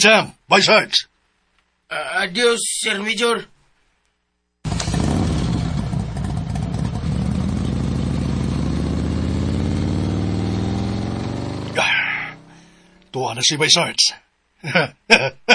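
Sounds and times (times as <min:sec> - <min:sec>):
speech: 0:00.0 - 0:01.1, 0:01.9 - 0:03.5, 0:13.2 - 0:15.5
motorcycle engine revving and pulling off: 0:04.7 - 0:13.1.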